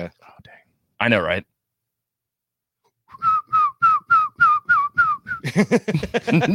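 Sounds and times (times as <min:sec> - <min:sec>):
speech: 0:01.0 - 0:01.5, 0:05.4 - 0:06.5
person whistling a tune: 0:03.1 - 0:05.5
laughter: 0:05.4 - 0:06.5.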